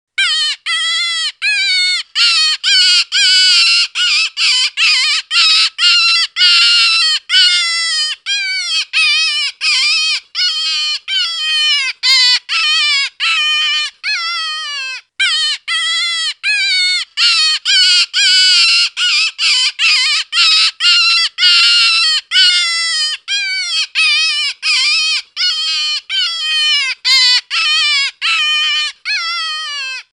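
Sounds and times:
young cottontail rabbit distress cry: 0.2 - 30.1.

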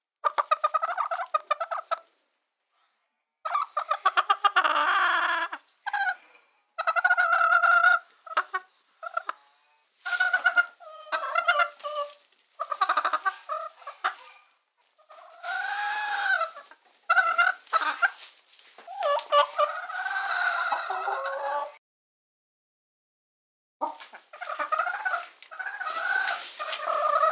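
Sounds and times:
chicken squawking in distress: 0.2 - 2.0, 3.5 - 6.2, 6.8 - 9.4, 10.0 - 18.3, 18.9 - 21.8, 23.8 - 27.2.

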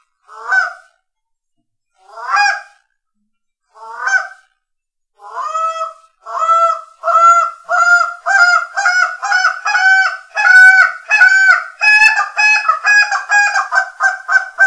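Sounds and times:
Canada goose honking: 0.3 - 0.9, 5.2 - 14.6.

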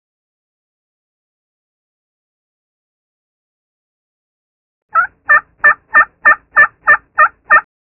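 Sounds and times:
turkey hen soft yelp: 4.9 - 7.6.

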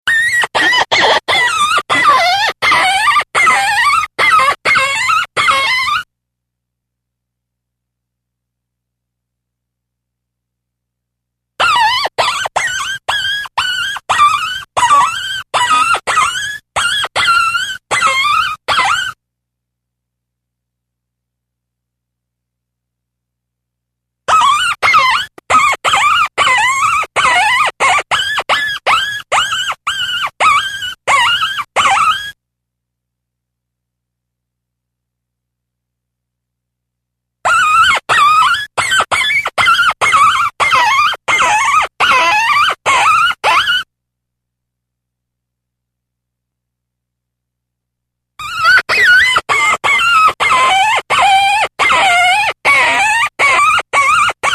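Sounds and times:
coyote pup: 0.1 - 6.1, 11.6 - 19.2, 24.3 - 32.4, 37.4 - 43.9, 48.4 - 54.5
fox: 0.1 - 6.1, 11.6 - 19.2, 24.3 - 32.4, 37.4 - 43.9, 48.4 - 54.5.

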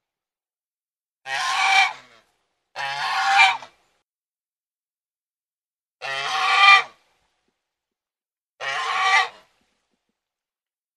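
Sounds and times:
domestic goose honking: 1.3 - 2.2, 2.8 - 3.7, 6.0 - 6.9, 8.6 - 9.4.

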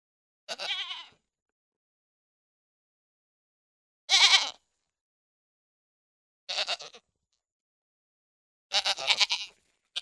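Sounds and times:
pygmy goat quavering bleat: 0.5 - 1.2, 4.1 - 4.6, 6.5 - 7.0, 8.7 - 10.0.

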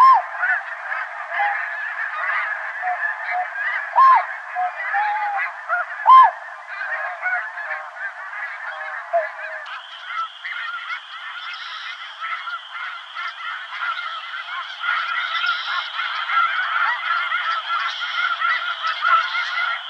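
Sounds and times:
snow goose flock honking: 0.0 - 19.8.

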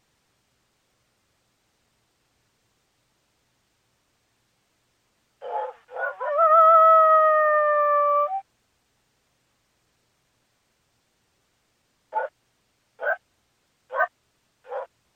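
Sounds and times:
coyote barks linked to mating: 5.4 - 6.7, 12.1 - 12.4, 13.0 - 13.2, 13.9 - 14.9
coyote howl linked to mating: 5.4 - 8.4.

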